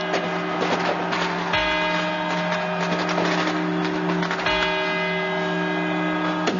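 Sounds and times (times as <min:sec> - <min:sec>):
clock tower bells chiming the quarter hours: 0:00.0 - 0:06.5.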